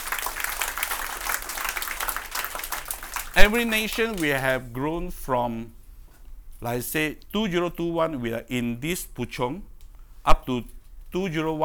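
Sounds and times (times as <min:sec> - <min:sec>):
crowd clapping as an offering to praise God: 0:00.0 - 0:04.7
speech: 0:03.4 - 0:05.8, 0:06.6 - 0:11.6.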